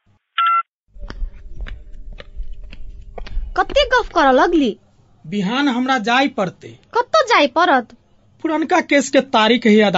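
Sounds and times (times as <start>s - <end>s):
short electronic phone beep as a call is hung up: 0.4s - 0.7s
low phone line hum: 0.9s - 5.2s
speech: 3.6s - 6.8s, 7.4s - 9.9s.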